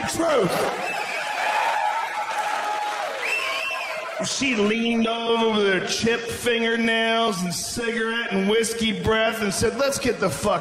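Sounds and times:
live audience shouting and whooping: 0.0 - 4.3
speech: 0.1 - 1.2, 4.2 - 10.6
live audience clapping: 0.4 - 4.2.

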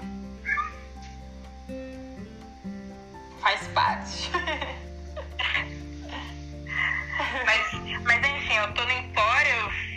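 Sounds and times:
low tonal hum with soft sustained notes: 0.0 - 9.9
cat meowing: 0.4 - 0.9
speech: 3.4 - 4.7, 8.6 - 9.8
laughter: 4.1 - 7.8.

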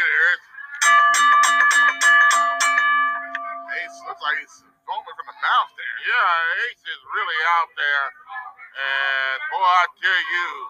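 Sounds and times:
wrestling ring bell clanging: 0.8 - 4.7
speech: 4.4 - 8.2, 8.8 - 10.6.

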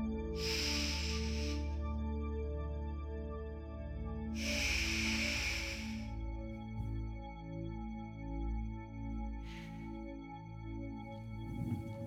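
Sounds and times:
steady sustained tonal background: 0.0 - 12.0
long slow breaths exhaled during a guided relaxation exercise: 0.4 - 1.7, 4.4 - 6.2, 9.4 - 9.9.

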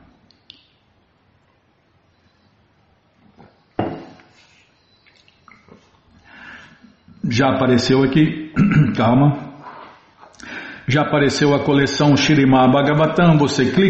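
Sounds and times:
person sipping and swallowing water: 5.1 - 6.5
speech: 7.3 - 9.4, 10.9 - 13.8.

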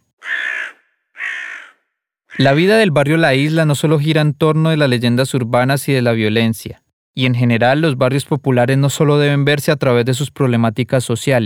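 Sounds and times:
potoo bird calling at night: 0.1 - 2.6
speech: 2.4 - 11.4.

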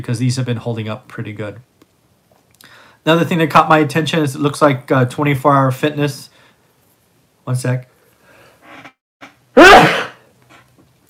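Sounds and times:
speech: 0.0 - 1.7, 3.0 - 6.3, 7.5 - 7.9
person sneezing into elbow: 9.6 - 10.2.

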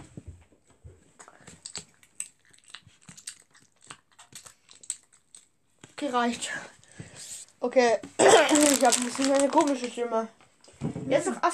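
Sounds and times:
wet mouth clicks and smacks: 1.2 - 5.6
sticky chewing of soft fruit gummy candy: 1.2 - 6.0, 8.4 - 10.0
speech: 6.0 - 6.8, 7.6 - 10.4, 11.1 - 11.5.

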